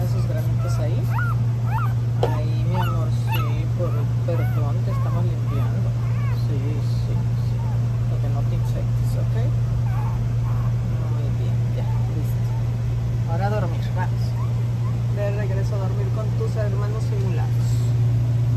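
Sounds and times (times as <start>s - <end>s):
small female dog whimpering: 0.0s - 12.8s, 13.8s - 15.4s
steady low mechanical hum: 0.0s - 18.5s.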